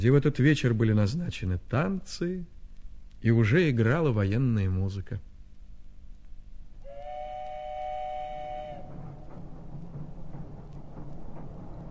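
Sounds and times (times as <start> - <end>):
speech: 0.0 - 2.6, 3.2 - 5.3
train horn blast: 6.8 - 9.1
passenger train bound for Moscow rolling along rails: 7.8 - 11.9.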